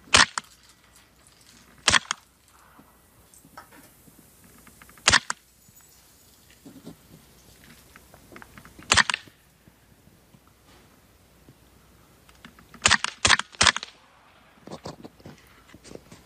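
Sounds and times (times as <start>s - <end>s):
faint hiss: 0.0s - 16.2s
gun firing subsonic ammunition: 1.8s - 2.2s, 8.8s - 9.3s, 12.8s - 14.5s.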